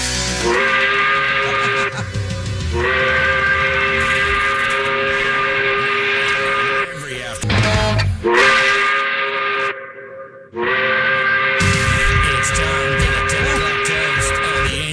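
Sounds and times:
steam whistle blowing as a 10 o'clock whistle: 0:00.2 - 0:07.0, 0:08.2 - 0:14.7
speech: 0:00.4 - 0:00.7
laughter: 0:00.7 - 0:04.9.

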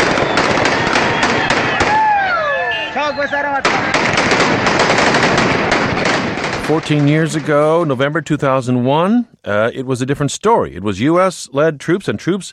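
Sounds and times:
fighters firing weapons in dense rapid automatic bursts in the streets of Kunduz: 0:00.0 - 0:02.0, 0:03.6 - 0:07.7
fighters yelling and shouting in city streets: 0:00.6 - 0:04.0
speech: 0:03.2 - 0:04.1, 0:06.7 - 0:12.5.

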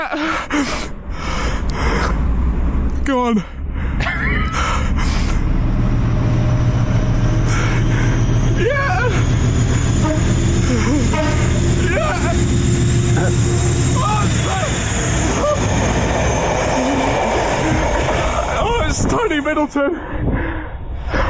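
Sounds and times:
train rolling along rails: 0:00.0 - 0:21.2
speech: 0:03.3 - 0:03.6, 0:19.5 - 0:20.8
train wheel squeals: 0:06.3 - 0:19.6.

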